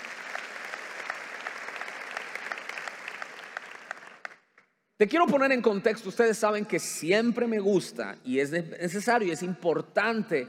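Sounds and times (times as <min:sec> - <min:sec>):
audience applauding: 0:00.0 - 0:04.6
speech: 0:05.0 - 0:10.4.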